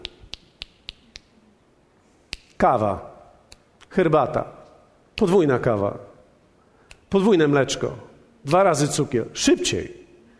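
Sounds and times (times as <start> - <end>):
sharp crisp finger snaps: 0.0 - 1.4, 2.3 - 2.6, 3.5 - 3.9, 5.2 - 5.4, 6.8 - 7.1
speech: 2.6 - 3.1, 3.9 - 4.6, 5.2 - 6.1, 7.1 - 10.0.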